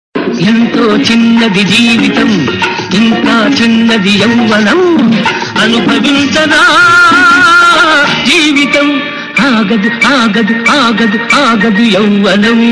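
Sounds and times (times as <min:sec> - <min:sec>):
Huawei guitar: 0:00.2 - 0:12.7.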